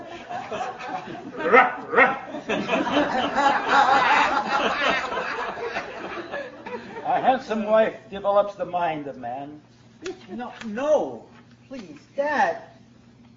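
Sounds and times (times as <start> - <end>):
laughter: 0.0 - 7.2
speech: 0.5 - 5.9, 7.1 - 12.7
dog barking: 1.5 - 2.3.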